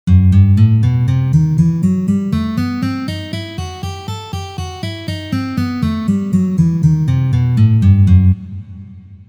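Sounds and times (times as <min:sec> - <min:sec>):
E harmonic minor scale played: 0:00.1 - 0:08.4.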